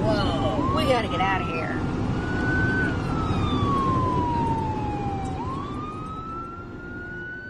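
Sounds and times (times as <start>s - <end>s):
fire truck siren wailing: 0.0s - 7.4s
steady rumble of road and engine noise: 0.0s - 7.4s
speech: 1.0s - 1.8s.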